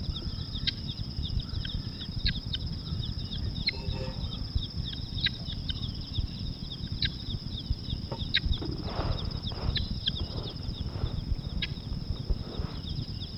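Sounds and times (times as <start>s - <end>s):
Helmeted Guineafowl Numida meleagris calling: 0.1s - 7.3s, 7.9s - 13.3s.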